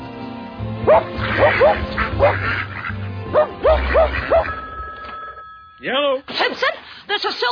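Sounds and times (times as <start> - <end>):
mongrel dog barking: 0.9 - 2.6, 3.3 - 4.5
speech: 0.9 - 2.7, 5.8 - 7.5.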